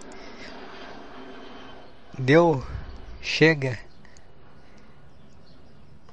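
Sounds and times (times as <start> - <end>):
airplane passing overhead in the sky over Porto Alegre: 0.0 - 6.1
speech: 2.2 - 3.9.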